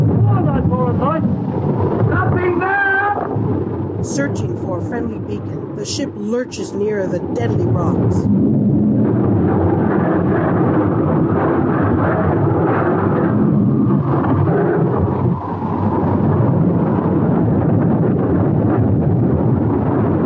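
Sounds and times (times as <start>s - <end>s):
low rumbling thunder: 0.0s - 4.0s, 8.2s - 20.2s
heavy wind in a raging frosty storm: 0.0s - 20.2s
speech: 4.1s - 8.6s.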